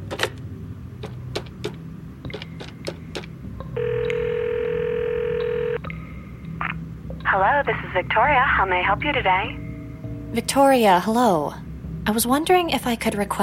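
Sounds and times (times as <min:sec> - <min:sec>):
click of a phone call connecting: 0:03.6 - 0:04.5
phone dialing clicks and beeps: 0:03.8 - 0:05.8
speech: 0:07.4 - 0:09.6, 0:10.3 - 0:13.4.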